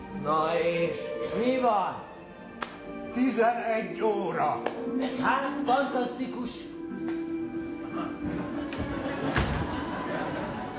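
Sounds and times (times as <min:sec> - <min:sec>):
speech: 0:00.2 - 0:02.1, 0:02.9 - 0:06.7
laughter: 0:07.7 - 0:10.7
door slammed shut in someone's face: 0:09.3 - 0:09.8.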